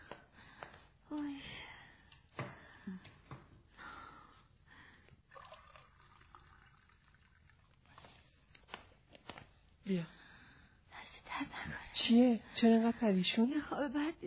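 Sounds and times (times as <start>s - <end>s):
water trickles and drips: 5.0s - 8.3s
cold water from the fridge poured in splashing bursts: 5.3s - 8.2s
speech: 9.9s - 10.2s, 12.0s - 14.2s.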